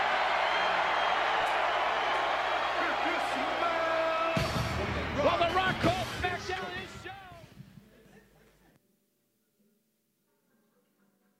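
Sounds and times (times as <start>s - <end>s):
huge wrestling arena crowd cheering and roaring: 0.0s - 7.4s.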